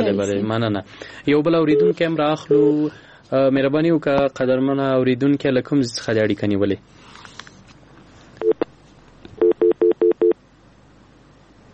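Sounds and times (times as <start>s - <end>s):
speech: 0.0s - 7.0s
telephone tones as a call to a radio phone-in connects: 1.7s - 2.9s, 9.4s - 10.4s.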